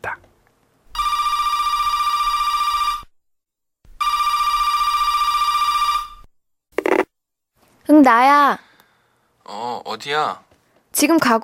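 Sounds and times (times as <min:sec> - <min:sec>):
telephone ringing: 0:01.0 - 0:03.1, 0:04.0 - 0:07.0
speech: 0:08.0 - 0:08.6, 0:09.5 - 0:11.4.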